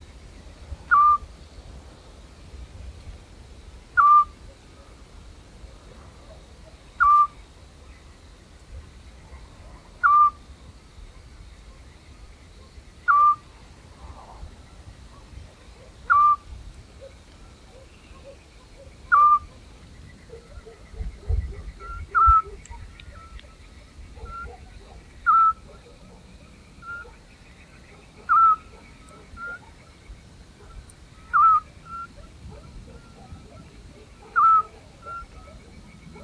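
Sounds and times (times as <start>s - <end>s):
Eurasian scops owl song: 0.8s - 1.3s, 3.9s - 4.8s, 6.3s - 7.6s, 10.0s - 10.4s, 13.0s - 13.5s, 15.2s - 19.6s, 20.2s - 26.0s, 26.8s - 27.3s, 27.9s - 30.0s, 30.6s - 36.2s.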